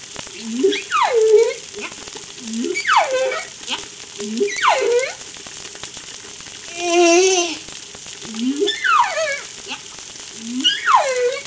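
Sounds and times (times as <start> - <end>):
underwater crackle and hiss: 0.0 - 11.4
humpback whale song groans and whistled sweeps at Darewin La Réunion: 0.4 - 3.6, 4.2 - 5.2, 8.3 - 9.5, 10.4 - 11.4.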